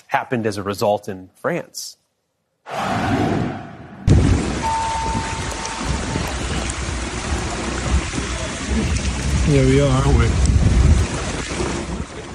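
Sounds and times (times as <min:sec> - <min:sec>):
speech: 0:00.1 - 0:02.0, 0:02.7 - 0:03.6, 0:08.8 - 0:10.7
dense wash of water pouring and splashing: 0:04.1 - 0:12.3
heavy torrential rain in London: 0:04.1 - 0:12.3.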